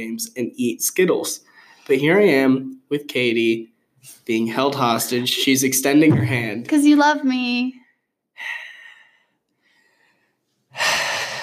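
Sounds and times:
speech: 0.0s - 7.8s
heavy breathing into a microphone: 8.4s - 11.4s.

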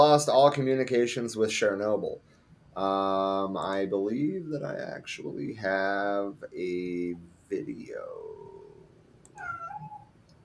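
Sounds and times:
speech: 0.0s - 8.4s
faint hum: 0.0s - 10.4s
cat meowing: 9.4s - 10.1s.

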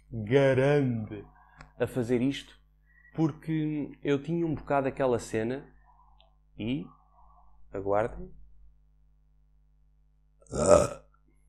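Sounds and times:
speech: 0.1s - 2.6s, 3.2s - 5.7s, 6.6s - 7.0s, 7.7s - 8.4s, 10.5s - 11.0s
loud rough gravelly burp: 10.5s - 11.1s.

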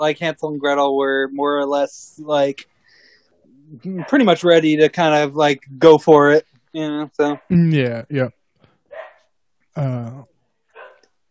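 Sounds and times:
speech: 0.0s - 2.7s, 3.7s - 8.4s, 9.8s - 10.3s
dog barking and whimpering: 8.9s - 9.2s, 10.8s - 11.0s.

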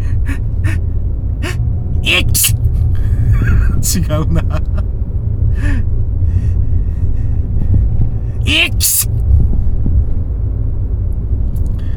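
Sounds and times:
person imitating a comedy-sketch style sneeze: 0.0s - 0.8s, 1.4s - 2.6s, 3.2s - 4.5s, 8.5s - 9.1s
low hum: 0.0s - 11.9s
laughter: 1.4s - 4.9s
speech: 2.1s - 2.6s, 3.4s - 5.0s, 8.5s - 9.2s.

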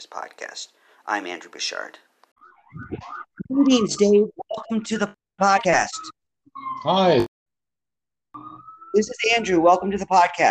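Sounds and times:
speech: 0.0s - 2.1s, 2.7s - 7.3s, 9.0s - 10.5s
emergency siren wailing in New York City: 2.4s - 4.2s, 8.4s - 10.0s.

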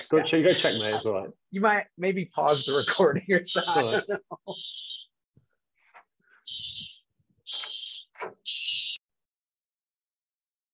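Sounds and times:
laughter: 0.0s - 1.3s, 2.7s - 4.6s
speech: 0.1s - 5.0s
fire alarm beeping: 2.5s - 5.1s, 6.4s - 9.0s.

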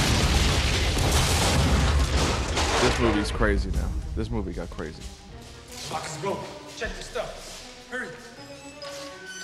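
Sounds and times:
movie explosion blowing up a hallway: 0.0s - 4.2s
speech: 3.0s - 5.2s, 5.9s - 8.2s.

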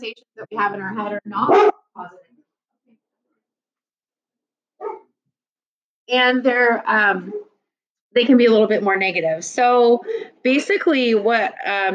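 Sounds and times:
speech: 0.0s - 2.2s, 6.1s - 7.5s, 8.2s - 11.9s
dog barking: 1.5s - 1.8s, 4.8s - 5.1s
faint soft yip: 1.5s - 1.8s, 4.8s - 5.0s.

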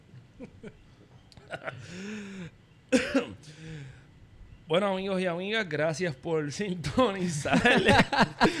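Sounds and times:
speech: 1.6s - 4.0s, 4.7s - 8.5s
person clearing throat: 2.9s - 3.4s
person coughing after choking on a drink: 2.9s - 3.4s
laughter: 7.2s - 8.5s.

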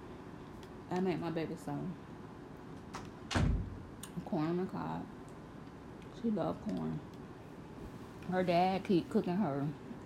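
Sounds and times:
speech: 0.9s - 2.1s, 4.3s - 5.2s, 6.2s - 7.1s, 8.3s - 9.9s
door pushed closed with a solid thud: 3.3s - 3.8s.

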